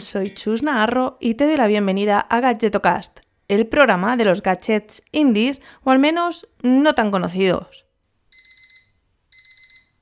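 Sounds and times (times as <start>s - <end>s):
speech: 0.0s - 7.8s
alarm clock beeping with shrill electronic beeps: 8.3s - 10.0s.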